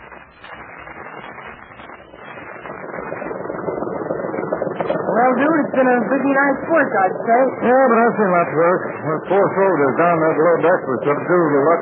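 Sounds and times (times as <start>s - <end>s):
Japanese patrol boat motor droning on a river: 2.7s - 11.8s
speech: 5.2s - 11.8s.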